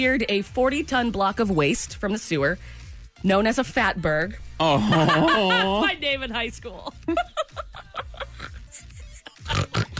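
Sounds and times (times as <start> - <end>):
speech: 0.0 - 7.6
laughter: 4.6 - 6.0, 7.0 - 9.9
person snorting: 9.4 - 9.9.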